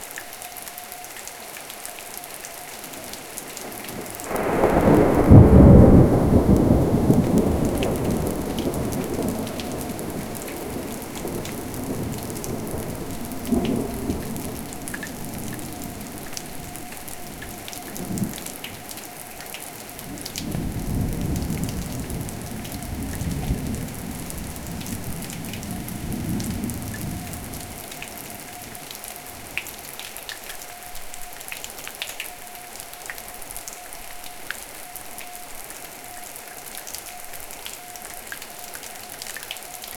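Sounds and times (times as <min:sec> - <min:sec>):
rain: 0:00.0 - 0:39.9
thunder: 0:04.0 - 0:18.4, 0:20.1 - 0:28.3.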